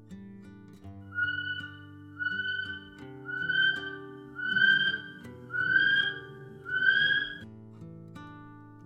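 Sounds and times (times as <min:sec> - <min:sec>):
male kiwi calling at night in a forest: 0:01.2 - 0:07.4
male kiwi giving shrill rising whistles: 0:01.2 - 0:07.4.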